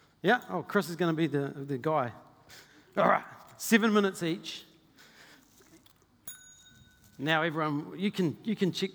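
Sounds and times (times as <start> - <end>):
speech: 0.2 - 4.7, 7.2 - 8.9
bell ringing in a church: 6.3 - 7.3.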